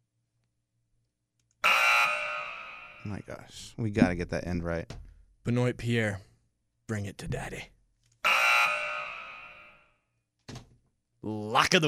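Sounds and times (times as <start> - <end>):
loud harsh buzzer: 1.6 - 3.1, 8.2 - 9.9
speech: 3.0 - 6.3, 6.9 - 7.7, 11.2 - 11.8.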